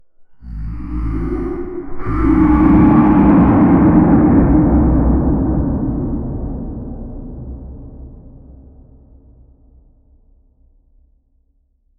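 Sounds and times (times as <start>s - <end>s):
deep echoing roar of a beast: 0.3s - 8.9s.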